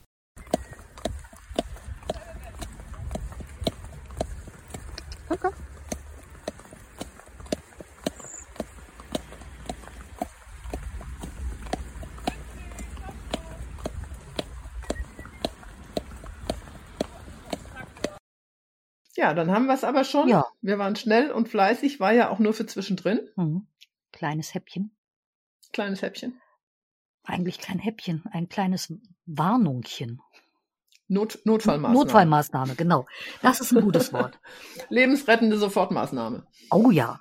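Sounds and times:
horse hoofbeats on a riding course: 0.0 - 18.2
speech: 5.3 - 5.6, 19.2 - 25.0, 25.7 - 26.4, 27.2 - 30.4, 31.1 - 37.1
laughter: 33.3 - 34.5.

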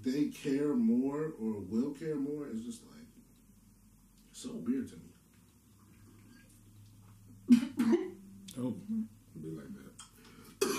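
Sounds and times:
speech: 0.0 - 3.0, 4.4 - 5.1, 8.6 - 9.9
low hum: 0.0 - 10.7
person coughing after choking on a drink: 7.5 - 8.2, 10.6 - 10.7.

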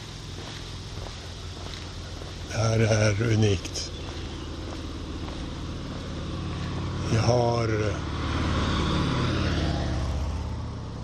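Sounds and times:
speech: 2.5 - 3.9, 7.2 - 8.2
motorcycle roaring past in Liechtenstein: 3.8 - 11.0.

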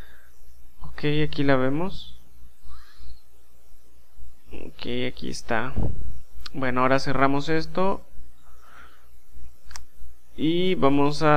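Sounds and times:
faint low hum: 0.0 - 11.3
speech: 1.0 - 2.2, 4.8 - 8.1, 10.4 - 11.3
computer mouse click: 9.6 - 9.9.

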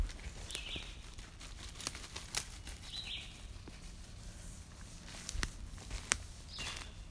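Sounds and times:
crunchy footsteps: 0.0 - 7.0
light rustling: 0.0 - 7.0
bird chirps outdoors: 0.4 - 1.1, 2.8 - 3.5, 6.5 - 7.0.

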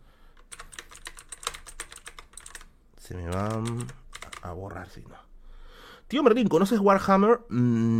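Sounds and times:
keys clattering as a note is typed on a keyboard: 0.4 - 4.6
speech: 3.1 - 5.3, 6.1 - 7.9.

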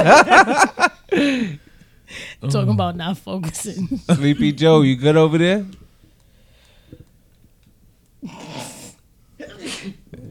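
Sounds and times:
laughter: 0.0 - 1.3
speech: 0.0 - 5.8
person sneezing loudly: 8.3 - 10.2.

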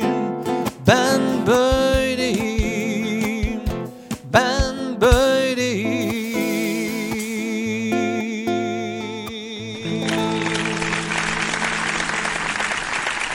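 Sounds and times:
song with sustained vocals and instruments: 0.0 - 11.7
large audience applause: 10.1 - 13.3.

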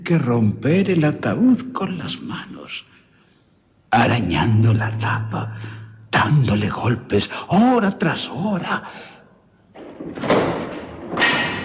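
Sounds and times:
speech: 0.1 - 3.0, 3.9 - 9.1
heavy crypt door creaking on iron hinges: 9.8 - 11.6.

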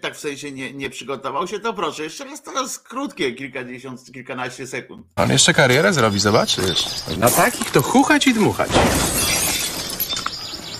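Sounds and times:
speech: 0.1 - 9.4
greenhouse glass panes shattering: 8.4 - 10.5
greenhouse glass shards tinkling: 8.9 - 10.6.

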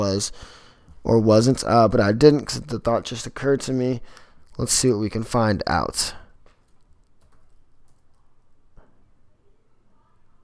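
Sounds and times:
speech: 0.0 - 6.2
computer keyboard typing: 6.5 - 8.6.

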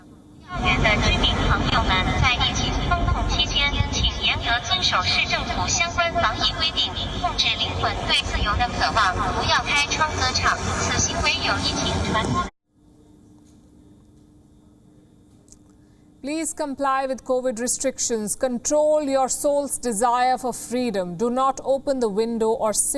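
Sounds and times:
amplified voice loudspeaker announcement: 0.4 - 12.5
drone hovering: 0.4 - 12.5
speech: 4.9 - 12.5, 16.2 - 22.9.

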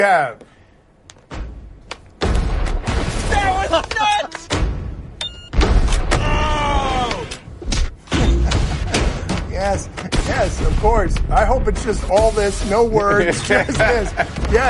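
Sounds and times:
speech: 0.0 - 0.5, 3.7 - 4.4, 9.6 - 14.6
explosion sound effects booming and rumbling: 2.2 - 3.8, 4.5 - 6.8, 8.1 - 13.0
laughter: 12.9 - 14.6.

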